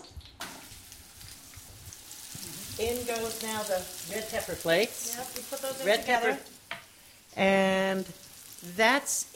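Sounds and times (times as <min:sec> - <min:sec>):
sliced onions sizzling in a hot pan: 0:00.4 - 0:09.3
speech: 0:02.8 - 0:06.6, 0:07.4 - 0:09.3.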